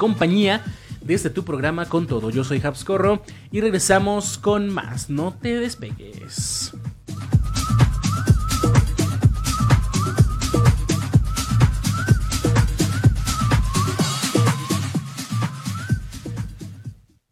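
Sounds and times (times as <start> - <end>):
speech: 0.0 - 6.9
instrumental music break with driving beat and heavy bass: 0.0 - 17.2.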